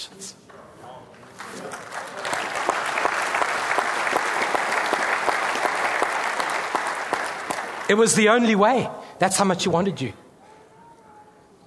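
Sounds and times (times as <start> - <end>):
speech: 0.0 - 0.6, 7.9 - 10.2
crowd applauding: 1.2 - 8.5.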